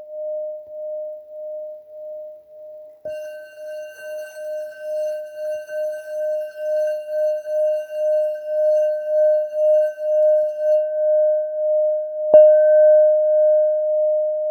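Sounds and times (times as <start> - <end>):
Tibetan singing bowls at 612 Hz: 0.5 - 14.4.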